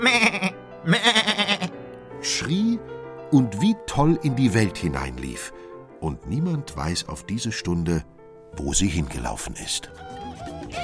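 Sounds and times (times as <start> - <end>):
goat bleating: 0.0 - 1.8
speech: 3.3 - 10.8.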